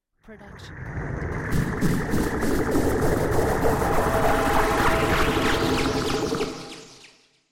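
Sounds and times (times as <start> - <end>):
magical charge up: 1.4 - 7.3.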